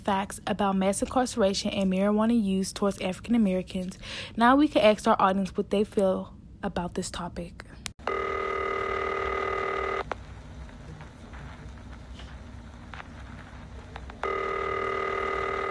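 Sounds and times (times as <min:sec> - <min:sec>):
speech: 0:00.0 - 0:07.8
telephone signal tone announcing an incoming call on a call-in show: 0:08.0 - 0:10.0, 0:14.2 - 0:15.6.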